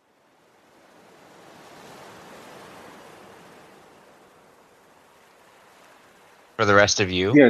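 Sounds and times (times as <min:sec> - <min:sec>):
gentle ocean waves washing in: 0:00.0 - 0:07.4
speech: 0:06.6 - 0:07.4.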